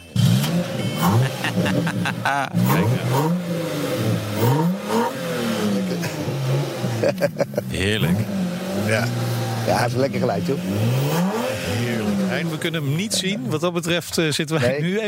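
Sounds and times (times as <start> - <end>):
car engine starting and revving: 0.0 - 13.9
speech: 0.6 - 4.6, 7.0 - 15.0
laughter: 0.7 - 3.3, 5.7 - 8.3
people's voices: 0.7 - 3.4, 7.0 - 10.8, 11.4 - 15.0.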